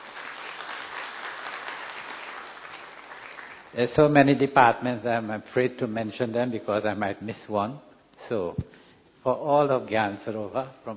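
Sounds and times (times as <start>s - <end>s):
sustained applause from a sizable crowd: 0.0s - 3.7s
speech: 3.7s - 10.9s.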